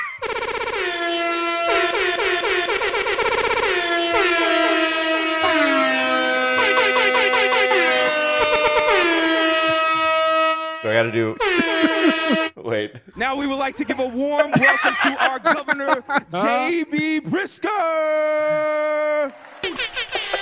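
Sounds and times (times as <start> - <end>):
air horn blasts played from a soundboard: 0.0 - 12.6
laughter: 9.0 - 17.6, 18.2 - 20.4
speech: 11.0 - 19.4.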